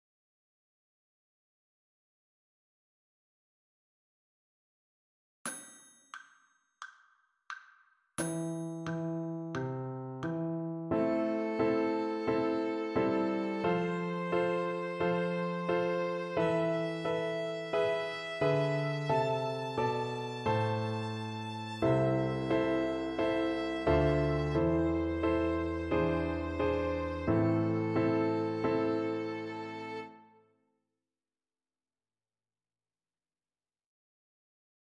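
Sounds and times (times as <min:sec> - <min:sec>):
A minor arpeggio: 0:08.6 - 0:30.0.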